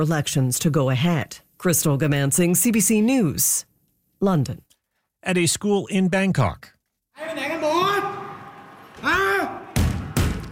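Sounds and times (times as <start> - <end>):
speech: 0.0 - 7.4
Thai police officer posing as a gunman shouting in a school in Bangkok: 7.2 - 10.4.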